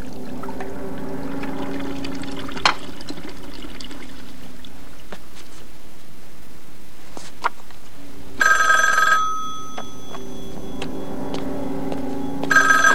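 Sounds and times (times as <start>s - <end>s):
low hum: 0.0s - 12.9s
telephone ringing: 8.4s - 12.9s.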